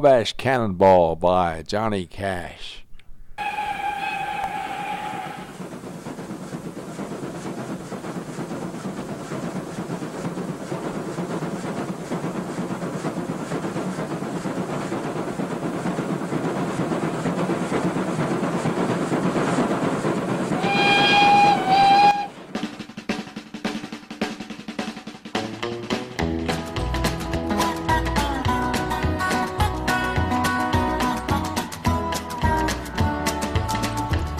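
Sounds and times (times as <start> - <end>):
speech: 0.0 - 2.8
train whistle: 3.4 - 5.6, 20.6 - 22.4
train rumbling along rails with clattering ride noise: 3.4 - 24.6, 25.2 - 34.3.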